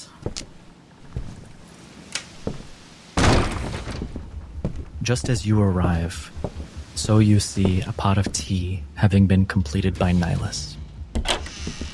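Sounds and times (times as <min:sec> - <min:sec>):
speech: 0:00.2 - 0:00.5, 0:05.1 - 0:10.8
door bursting open with a sudden loud crash: 0:03.2 - 0:04.2
scattered knocks and thuds: 0:03.2 - 0:08.0.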